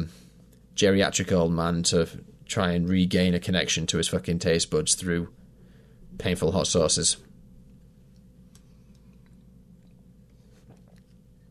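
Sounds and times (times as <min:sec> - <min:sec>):
low hum: 0:00.0 - 0:11.4
speech: 0:00.8 - 0:05.4, 0:06.1 - 0:07.3
person sipping coffee: 0:08.5 - 0:11.4.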